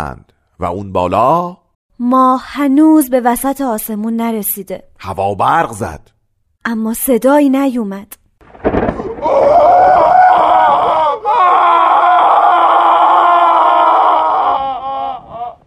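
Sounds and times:
speech: 0.0 - 8.2
girl screaming: 9.2 - 15.6.

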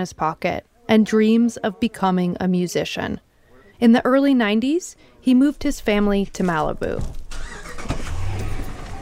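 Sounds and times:
speech: 0.0 - 7.2
car engine cranking and idling: 6.7 - 8.9.

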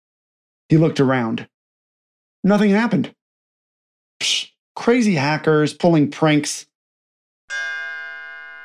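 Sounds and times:
speech: 0.7 - 1.5, 2.4 - 3.2, 4.2 - 6.7, 7.5 - 7.8
loud bell strike with bright metallic tone: 7.5 - 8.6.

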